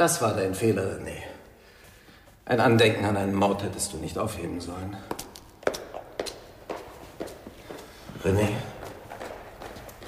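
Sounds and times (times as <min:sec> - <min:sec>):
speech: 0:00.0 - 0:01.3, 0:02.5 - 0:05.2, 0:08.2 - 0:08.7
person running up the stairs of a church tower: 0:05.0 - 0:10.0.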